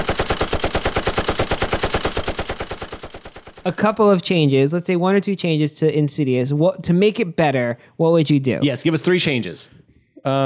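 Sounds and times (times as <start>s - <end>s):
machine gun fire sound effect: 0.0s - 4.3s
speech: 3.6s - 10.4s.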